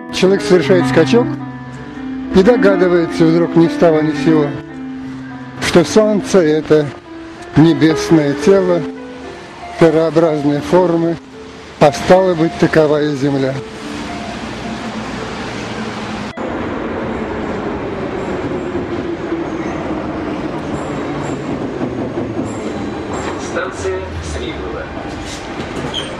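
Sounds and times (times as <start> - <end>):
subway train running: 0.0 - 26.1
speech: 0.1 - 1.5, 2.3 - 4.7, 5.6 - 7.0, 7.6 - 8.9, 9.8 - 13.7
faint metallic squeals: 25.1 - 26.1.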